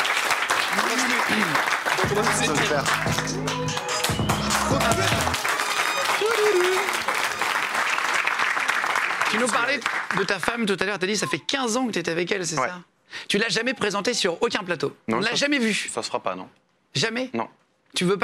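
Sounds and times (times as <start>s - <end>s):
crowd applauding loudly: 0.0s - 10.6s
speech: 0.9s - 5.5s, 9.3s - 18.2s.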